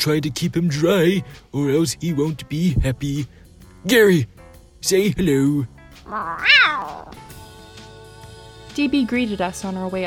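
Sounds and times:
speech: 0.0s - 7.3s, 8.8s - 10.0s
male tabby cat meowing: 6.0s - 7.3s.

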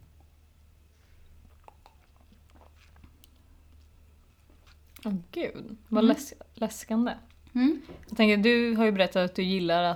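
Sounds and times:
low steady hum: 0.0s - 9.9s
sipping and gulping beer: 1.2s - 5.1s
wet mouth clicks: 1.4s - 3.8s
speech: 5.0s - 9.9s.

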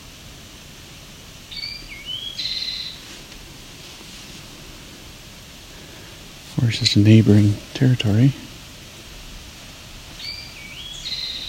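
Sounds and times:
soft outdoor hiss: 0.0s - 11.4s
bird singing thin high whistled notes and a bright trill: 1.5s - 3.0s, 10.2s - 11.4s
speech: 6.6s - 8.5s.

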